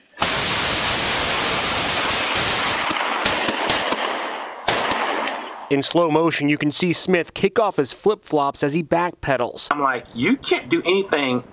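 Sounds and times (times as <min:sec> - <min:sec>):
gunfire in an exchange of shots: 0:00.2 - 0:05.7
speech: 0:05.7 - 0:11.5.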